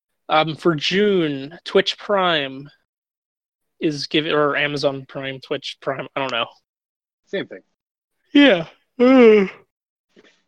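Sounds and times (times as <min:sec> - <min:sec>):
speech: 0:00.3 - 0:02.8, 0:03.8 - 0:06.6, 0:07.3 - 0:07.7, 0:08.3 - 0:09.6
person yawning: 0:08.4 - 0:09.7.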